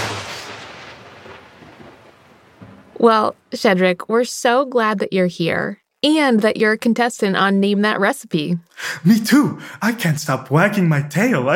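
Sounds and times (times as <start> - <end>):
rolling thunder: 0.0 - 3.5
rain: 0.0 - 3.7
speech: 3.0 - 11.5.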